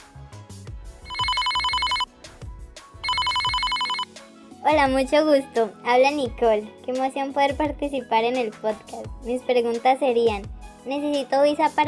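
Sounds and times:
telephone ringing with an incoming call in a trilling bell tone: 0:01.0 - 0:02.1, 0:03.0 - 0:04.1
speech: 0:04.7 - 0:11.8.

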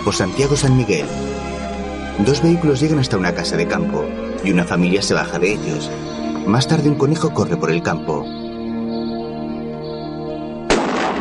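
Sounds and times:
speech: 0:00.0 - 0:01.5, 0:02.2 - 0:08.4
music bed: 0:00.0 - 0:11.1
shotgun blast fired while hunting a rabbit in the countryside: 0:10.7 - 0:11.1.

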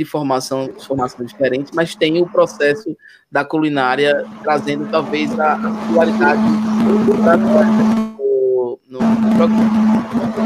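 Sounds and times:
speech: 0:00.0 - 0:08.1, 0:08.9 - 0:10.4
steady electronic hum: 0:00.0 - 0:10.4
warbling wavering tone: 0:00.3 - 0:08.3, 0:09.0 - 0:10.4.

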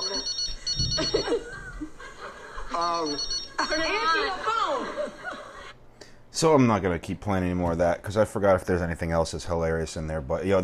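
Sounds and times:
telephone ringing with a high electronic trill: 0:00.0 - 0:01.5, 0:02.7 - 0:04.2
person chuckling: 0:00.8 - 0:02.0
speech: 0:01.0 - 0:01.6, 0:02.8 - 0:05.3, 0:06.4 - 0:10.6.

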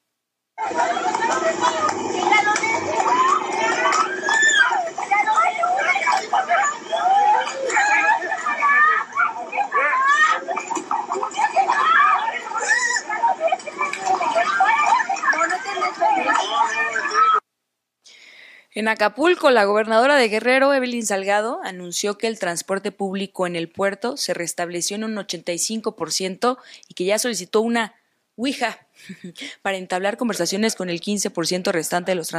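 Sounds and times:
speech: 0:00.6 - 0:02.0, 0:18.8 - 0:32.3
agitated street commotion: 0:00.6 - 0:17.4
laughter: 0:00.6 - 0:17.4
several women screaming and shouting in the State of Mexico: 0:00.6 - 0:17.4.

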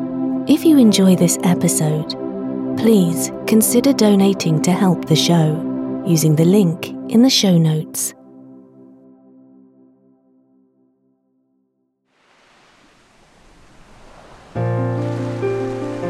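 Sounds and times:
soft sustained music tones: 0:00.0 - 0:10.9, 0:13.0 - 0:16.0
speech: 0:00.5 - 0:02.2, 0:02.8 - 0:08.2
ocean waves breaking on shore: 0:12.2 - 0:16.0.

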